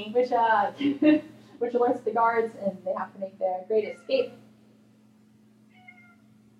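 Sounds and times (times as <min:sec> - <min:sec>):
speech: 0:00.0 - 0:04.4
steady low hum: 0:00.0 - 0:06.5
cat meowing: 0:03.8 - 0:04.3, 0:05.7 - 0:06.3.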